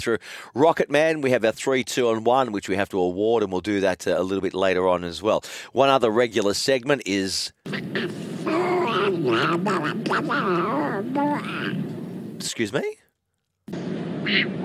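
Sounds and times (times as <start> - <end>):
speech: 0.0 - 8.6, 9.2 - 13.0, 14.3 - 14.6
duck quacking sound effect: 7.7 - 11.9, 14.2 - 14.6.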